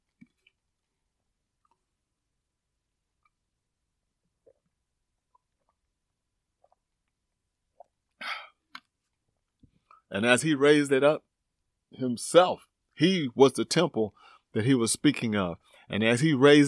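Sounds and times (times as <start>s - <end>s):
person sipping and swallowing water: 4.2s - 9.0s
speech: 10.1s - 11.3s, 11.9s - 16.6s.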